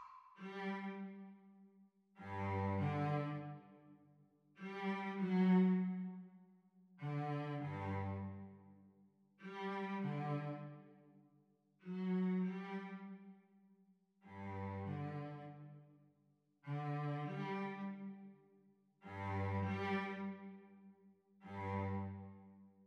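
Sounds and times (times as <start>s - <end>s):
cello duet playalong: 0.4s - 1.5s, 2.2s - 3.9s, 4.6s - 8.8s, 9.4s - 11.1s, 11.8s - 13.5s, 14.3s - 15.9s, 16.7s - 18.4s, 19.0s - 22.8s.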